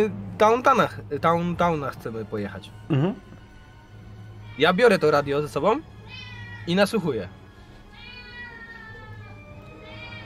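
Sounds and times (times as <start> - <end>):
speech: 0.0 - 3.3, 4.6 - 7.4
cat meowing: 4.3 - 5.0, 6.0 - 6.8, 7.8 - 10.2.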